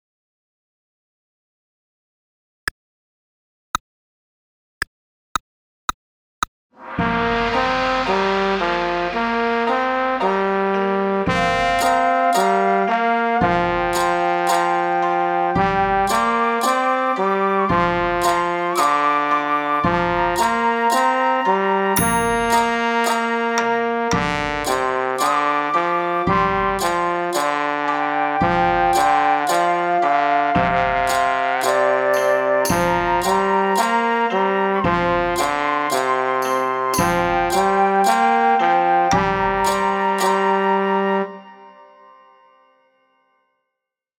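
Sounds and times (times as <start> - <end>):
trombone playing a Chinese melody: 6.8 - 41.9.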